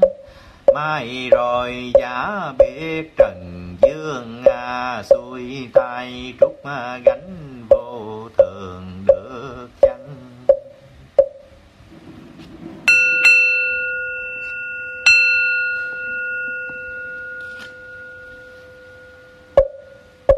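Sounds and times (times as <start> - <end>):
sharp knocks: 0.0 - 13.7, 19.6 - 20.3
speech: 0.8 - 9.8
bell struck: 12.9 - 20.2.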